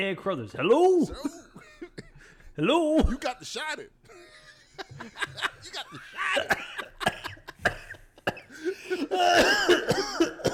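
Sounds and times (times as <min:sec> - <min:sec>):
speech: 0:00.0 - 0:01.5, 0:02.6 - 0:04.3, 0:05.0 - 0:06.7
harsh hacking coughing fit: 0:01.2 - 0:02.4, 0:05.3 - 0:10.5
laughter: 0:04.1 - 0:09.4
strained wheezy gasping: 0:07.3 - 0:09.8.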